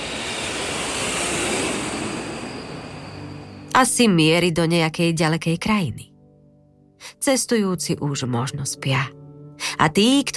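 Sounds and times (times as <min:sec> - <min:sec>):
jet airplane roar passing high overhead at night: 0:00.0 - 0:03.7
speech: 0:03.8 - 0:06.1, 0:07.0 - 0:10.3.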